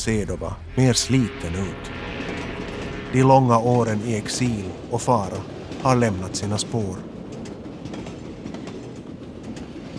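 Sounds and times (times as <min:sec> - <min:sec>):
speech: 0:00.0 - 0:02.1, 0:03.1 - 0:07.1
train rolling along the rails with a low rumble: 0:00.0 - 0:09.9
train wheels clickety-clack crossing track joints: 0:04.8 - 0:09.9.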